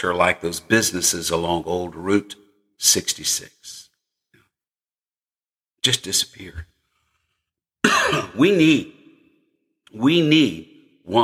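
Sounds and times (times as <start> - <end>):
speech: 0.0 - 3.8, 5.8 - 6.7, 7.8 - 9.0, 9.9 - 11.2
harsh cough with rasping throat-clearing: 7.8 - 8.5.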